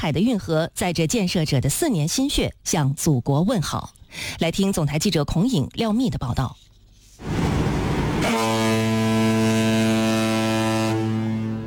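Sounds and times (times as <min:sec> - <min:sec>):
speech: 0:00.0 - 0:07.3
5,000-ton cargo ship deep horn blaring at departure on the Pinglu Canal: 0:07.2 - 0:11.6.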